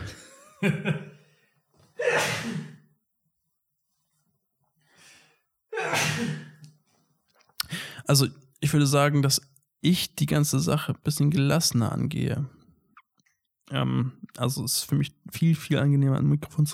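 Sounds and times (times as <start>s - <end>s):
speech: 0.6s - 1.1s, 8.1s - 12.6s, 13.7s - 16.7s
person sneezing: 2.0s - 2.8s, 5.8s - 6.6s
sharp gasping inhale before a sneeze: 7.6s - 8.0s.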